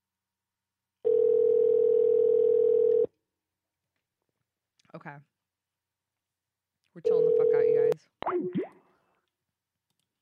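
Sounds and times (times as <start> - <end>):
electronic ringback tone from a phone line: 1.0 - 3.1
speech: 5.0 - 5.4, 7.0 - 8.7.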